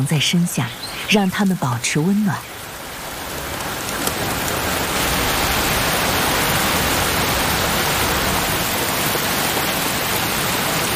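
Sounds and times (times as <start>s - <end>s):
speech: 0.0s - 2.6s
heavy rain falling during a storm where white storks nest: 0.0s - 10.9s.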